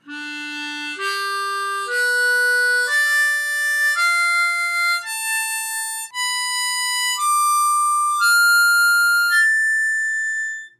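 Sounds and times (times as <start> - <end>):
C major harmonica draw notes on holes 1 to 10: 0.0 - 10.7.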